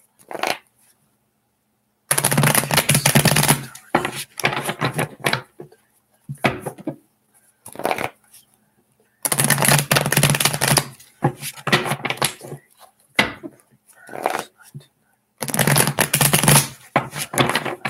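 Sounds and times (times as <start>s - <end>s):
tarot cards being shuffled: 0.2s - 0.6s, 2.1s - 5.5s, 7.6s - 8.2s, 9.2s - 14.6s, 15.4s - 17.8s
person talking quietly: 13.9s - 15.0s.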